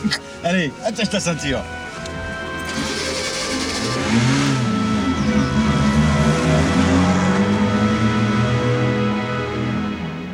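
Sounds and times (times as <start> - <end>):
speech: 0.0 - 1.8
car engine accelerating: 2.0 - 10.3.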